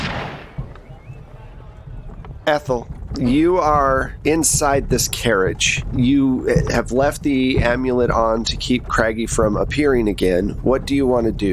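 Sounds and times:
very loud gunshot with tail: 0.0 - 0.8
low rumbling: 0.0 - 11.5
speech: 2.5 - 11.5.

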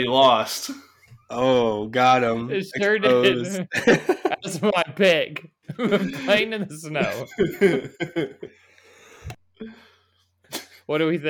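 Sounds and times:
speech: 0.0 - 8.6, 10.9 - 11.2
laughter: 2.7 - 8.5
person coughing rough throaty coughs: 6.0 - 7.9.

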